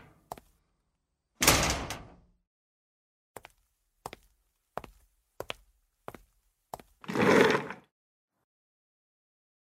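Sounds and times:
door shutting with a thud: 1.4 - 2.2.

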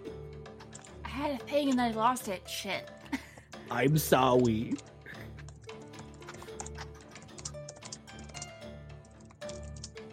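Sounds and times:
speech: 1.2 - 3.0, 3.7 - 4.9
person typing a chat message on a computer keyboard: 5.3 - 10.0.

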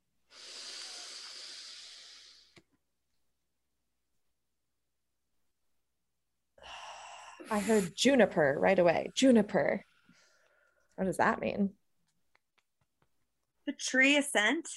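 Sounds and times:
person inhaling deeply during a guided breathing exercise: 0.3 - 2.6, 6.6 - 8.0
speech: 7.5 - 9.9, 11.0 - 11.8, 13.7 - 14.7.

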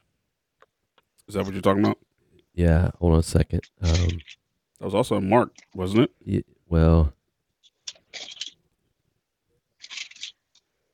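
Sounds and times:
speech: 1.3 - 7.2
pages of a book being turned: 3.8 - 4.4, 7.7 - 8.6, 9.8 - 10.7.

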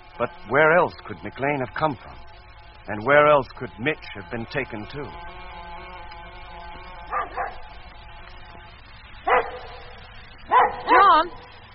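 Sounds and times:
low hum: 0.0 - 11.7
speech: 0.2 - 2.3, 2.9 - 5.4
dog barking and yapping: 7.1 - 7.6, 9.3 - 9.9, 10.5 - 11.2.

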